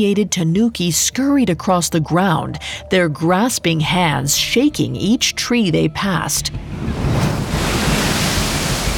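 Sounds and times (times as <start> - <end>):
speech: 0.0 - 7.0
ocean waves washing and splashing: 6.5 - 8.9
wind noise: 6.5 - 8.9.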